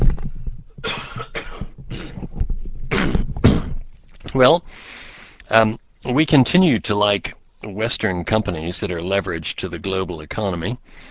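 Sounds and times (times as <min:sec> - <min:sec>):
harsh coughs: 0:00.8 - 0:02.3, 0:02.9 - 0:03.8
speech: 0:04.4 - 0:04.9, 0:05.5 - 0:11.0.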